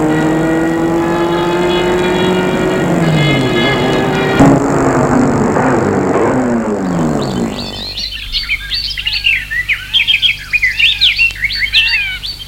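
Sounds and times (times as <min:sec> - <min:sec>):
car engine humming as the car slows and stops: 0:00.0 - 0:08.8
birds chirping: 0:00.0 - 0:12.4.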